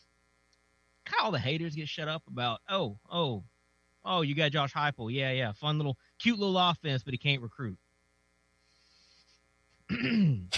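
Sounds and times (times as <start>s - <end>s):
speech: 1.2s - 7.8s, 9.9s - 10.5s
throat clearing: 9.9s - 10.5s.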